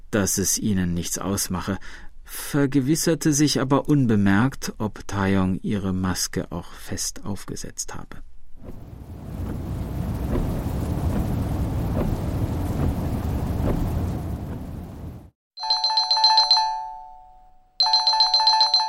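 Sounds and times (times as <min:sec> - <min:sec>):
speech: 0:00.1 - 0:08.9
steady rumbling rain-like noise: 0:08.6 - 0:15.4
mobile phone ringtone with bright repeating electronic tones: 0:15.6 - 0:18.8.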